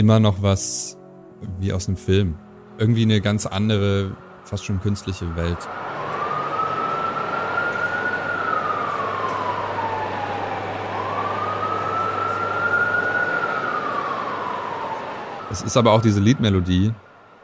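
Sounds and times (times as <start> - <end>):
speech: 0.0 - 6.0, 15.6 - 17.1
low hum: 1.0 - 17.4
emergency vehicle siren wailing in a city: 4.6 - 17.4.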